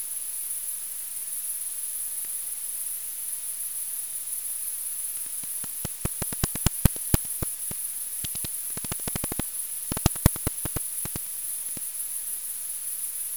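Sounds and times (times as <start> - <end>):
high-pitched hiss: 5.2 - 11.3
bat echolocation clicks recorded with a bat detector: 5.2 - 11.8.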